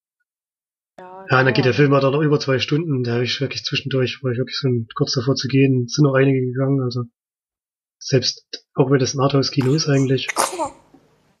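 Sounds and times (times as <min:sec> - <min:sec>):
speech: 0:01.0 - 0:07.2, 0:08.0 - 0:10.8
sneeze: 0:09.6 - 0:10.9.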